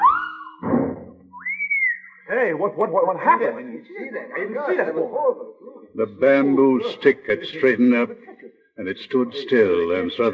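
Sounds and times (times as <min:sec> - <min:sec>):
whistling of a fast-pitched ball: 0:00.0 - 0:00.6, 0:01.3 - 0:02.3
laughter: 0:02.4 - 0:10.3
speech: 0:02.5 - 0:10.3.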